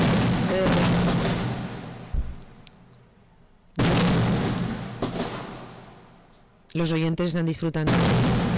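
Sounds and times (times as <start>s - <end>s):
sharp firecracker booms: 0.0s - 2.5s, 3.8s - 6.3s, 7.8s - 8.5s
speech: 6.8s - 8.4s.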